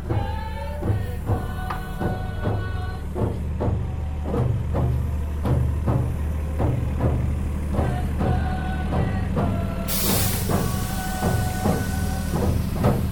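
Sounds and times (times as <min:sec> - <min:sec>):
bus engine rumbling as the bus rounds a corner: 0:00.0 - 0:13.1
sharp burst of air hiss: 0:09.9 - 0:13.1.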